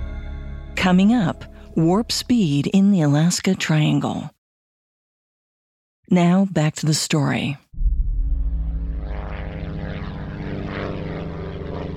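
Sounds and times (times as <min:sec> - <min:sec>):
speech: 0:00.8 - 0:04.4, 0:06.1 - 0:07.6
small propeller plane engine droning in flight: 0:08.2 - 0:11.9.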